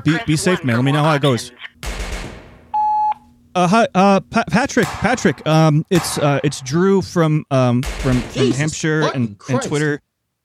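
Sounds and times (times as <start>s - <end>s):
speech: 0.0s - 1.7s, 3.6s - 10.1s
rapid gunfire: 1.8s - 2.7s, 4.8s - 6.7s, 7.8s - 8.6s.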